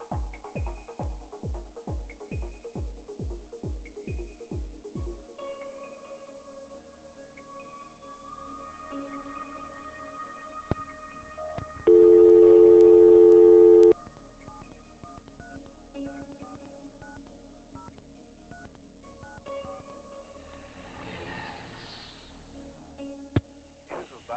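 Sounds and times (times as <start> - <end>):
telephone dialing tones of an outgoing call: 11.9 - 14.0.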